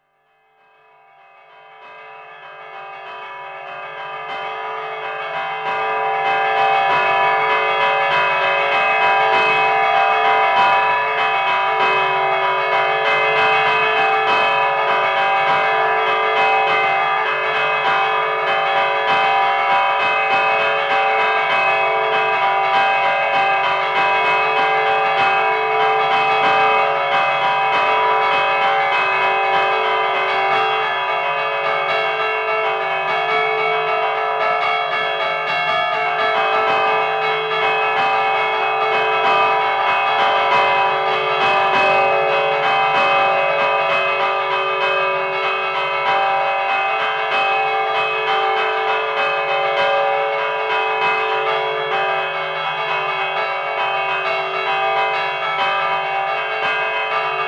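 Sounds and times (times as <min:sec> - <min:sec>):
church bells ringing in a peal: 0:01.4 - 0:57.4.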